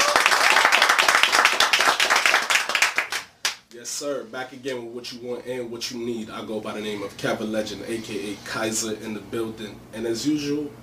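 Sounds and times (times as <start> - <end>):
small group applauding: 0.0 - 3.6
speech: 4.0 - 10.8.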